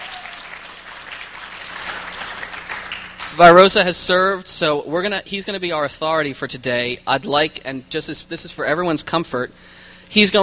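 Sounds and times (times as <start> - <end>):
crowd clapping and cheering: 0.0 - 3.6
speech: 3.4 - 10.4.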